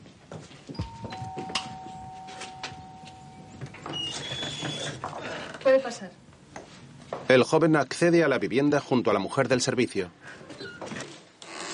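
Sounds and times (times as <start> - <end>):
doorbell chime at a house front door: 0.8 - 3.8
speech: 5.7 - 6.2, 7.3 - 10.5.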